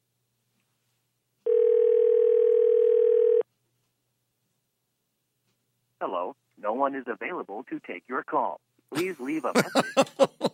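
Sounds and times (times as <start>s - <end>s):
telephone ring tone while placing a call: 1.5s - 3.4s
speech: 6.2s - 10.4s
laughter: 9.0s - 10.5s.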